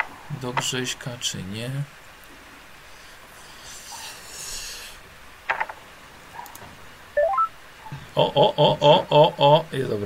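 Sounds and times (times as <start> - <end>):
soft hiss: 0.0 - 10.0
speech: 0.4 - 2.0, 8.2 - 10.0
telephone keypad tones as a call is dialed: 7.2 - 7.5.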